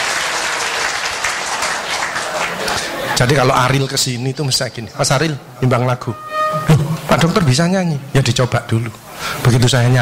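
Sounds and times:
audience applause in a lecture hall at a doctor's talk: 0:00.0 - 0:03.2
speech: 0:03.2 - 0:10.0.

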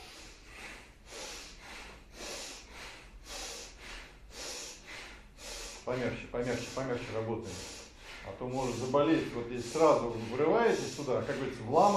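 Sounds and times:
bhastrika bellows breathing with the chest and shoulders during yoga kriya: 0:00.0 - 0:11.9
speech: 0:05.9 - 0:11.9.

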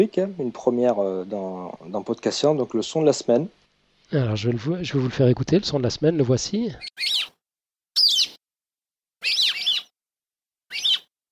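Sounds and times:
speech: 0:00.0 - 0:07.2
rock sparrow Petronia petronia singing: 0:06.8 - 0:07.3, 0:08.0 - 0:08.4, 0:09.2 - 0:09.9, 0:10.7 - 0:11.0.

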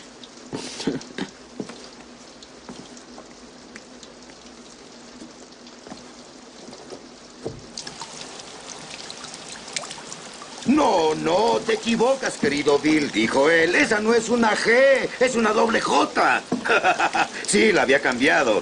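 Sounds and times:
drips and splashes: 0:00.0 - 0:18.6
rain falling: 0:00.0 - 0:18.6
speech: 0:10.8 - 0:18.6.

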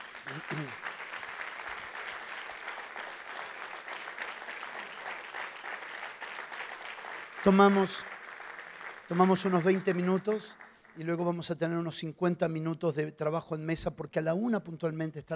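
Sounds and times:
congregation applause at a church workshop gathering: 0:00.0 - 0:12.1
speech: 0:00.3 - 0:00.9, 0:07.4 - 0:08.1, 0:09.1 - 0:15.3.

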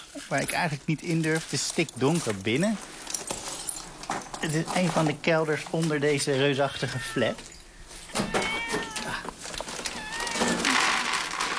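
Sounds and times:
rustling and shuffling: 0:00.0 - 0:11.5
speech: 0:00.2 - 0:03.0, 0:04.4 - 0:07.5
cat meowing in a pitch-dark cellar beneath an apartment block: 0:06.6 - 0:11.0.

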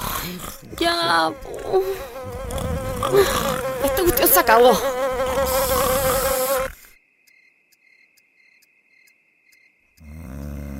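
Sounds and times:
flies and mosquitoes buzzing in an insecticide advertisement: 0:00.0 - 0:07.0
speech: 0:00.2 - 0:02.4, 0:03.1 - 0:05.9
faint regular ticks: 0:01.9 - 0:03.1, 0:05.4 - 0:10.7.

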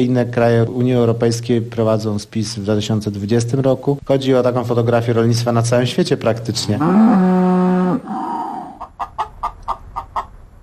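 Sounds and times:
speech: 0:00.0 - 0:08.2
hens clucking on a free-range farm: 0:06.7 - 0:10.6.

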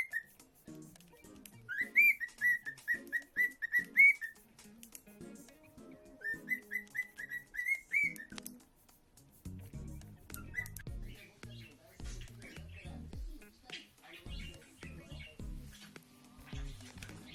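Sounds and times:
Lutino cockatiel whistling rising notes: 0:00.0 - 0:00.4, 0:01.7 - 0:04.4, 0:06.2 - 0:08.5, 0:10.3 - 0:11.2.

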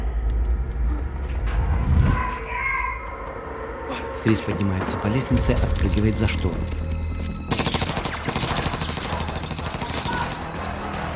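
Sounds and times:
thick rumbling backdrop: 0:00.0 - 0:07.5
speech: 0:04.2 - 0:06.9
automatic gunfire in a film corridor shootout: 0:07.5 - 0:10.4.

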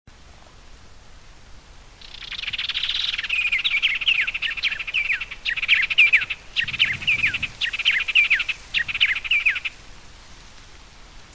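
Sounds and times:
faint low background noise: 0:00.1 - 0:11.3
bird song of bright high chirps and downslurred whistled notes: 0:02.0 - 0:09.8.

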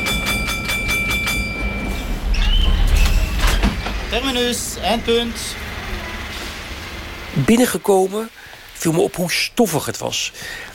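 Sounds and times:
tram on line 44 from Brussels to Tervuren rumbling: 0:00.0 - 0:07.8
speech: 0:04.1 - 0:05.6, 0:07.4 - 0:10.7.

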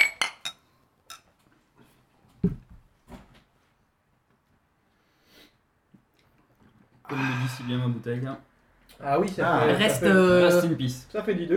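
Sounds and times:
beer glasses clinking in a toast at a tasting: 0:00.0 - 0:01.3
speech: 0:07.1 - 0:11.5.

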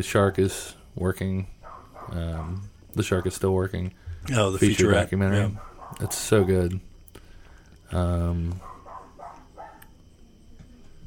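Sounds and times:
speech: 0:00.0 - 0:06.9, 0:07.9 - 0:08.7
loud drawn-out dog bark: 0:01.6 - 0:02.7, 0:05.6 - 0:06.3, 0:08.6 - 0:09.9.

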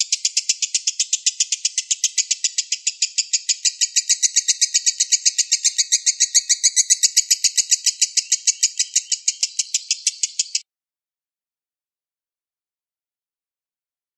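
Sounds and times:
Oriental magpie-robin singing sharp high chattering notes: 0:00.0 - 0:10.6.

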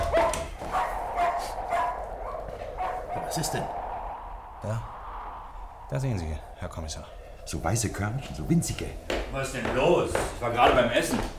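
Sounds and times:
dog barking: 0:00.0 - 0:03.3
speech: 0:03.4 - 0:03.8, 0:04.6 - 0:05.0, 0:05.9 - 0:11.3.

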